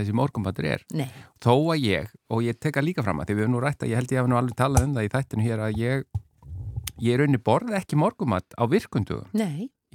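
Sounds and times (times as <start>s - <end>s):
speech: 0.0s - 6.2s, 7.0s - 9.9s
stomach rumbling: 5.6s - 7.1s.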